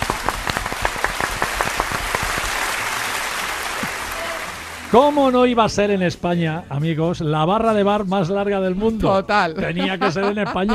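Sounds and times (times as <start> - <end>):
crowd applause: 0.0 - 5.6
speech: 4.9 - 10.7
laughter: 9.4 - 10.7.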